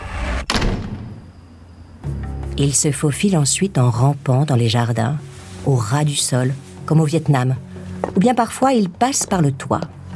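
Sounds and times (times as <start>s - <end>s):
front door slamming shut: 0.3s - 1.3s
speech: 2.6s - 10.0s.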